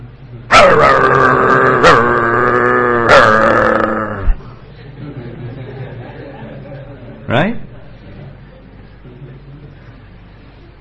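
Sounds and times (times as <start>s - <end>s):
speech: 0.5s - 1.1s
person imitating a territorial dog barking: 0.5s - 4.5s
laughter: 4.7s - 7.3s.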